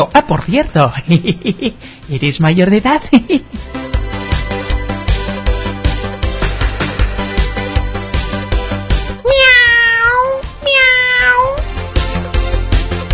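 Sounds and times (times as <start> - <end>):
speech: 0.0 - 3.9
busy music with a regular beat: 3.4 - 9.2, 11.6 - 13.1
cat meowing: 9.2 - 11.7.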